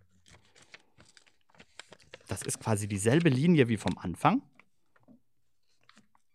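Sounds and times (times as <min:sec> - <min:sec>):
paper crinkling and creasing as a paper plane is folded: 0:00.0 - 0:06.3
speech: 0:02.4 - 0:04.5.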